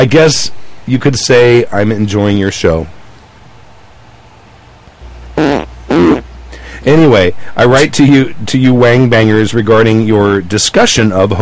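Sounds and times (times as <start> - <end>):
speech: 0.0 - 3.0, 6.8 - 11.4
short buzzy fart sounds: 5.3 - 6.3.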